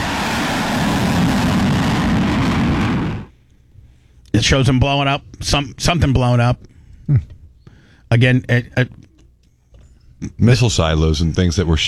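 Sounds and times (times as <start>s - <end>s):
fighter jet roaring with afterburners on: 0.0s - 3.3s
speech: 4.4s - 7.3s, 8.1s - 9.0s, 10.2s - 11.8s.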